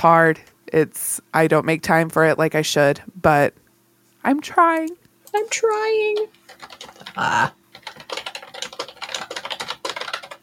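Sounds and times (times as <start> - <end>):
speech: 0.0 - 3.6, 4.2 - 8.1
rapid typing on a mechanical keyboard: 6.1 - 10.4.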